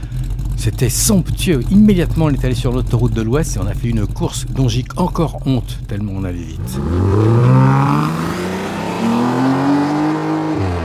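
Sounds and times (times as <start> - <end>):
Mustang car engine revving while accelerating: 0.0 - 10.8
speech: 0.6 - 8.4, 9.0 - 9.6.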